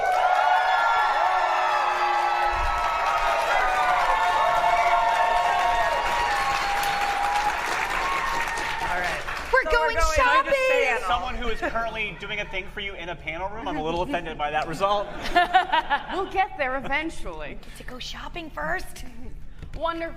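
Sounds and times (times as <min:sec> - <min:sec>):
large crowd applauding: 0:00.0 - 0:10.8
speech: 0:11.3 - 0:19.2, 0:19.8 - 0:20.1
laughter: 0:13.7 - 0:16.8.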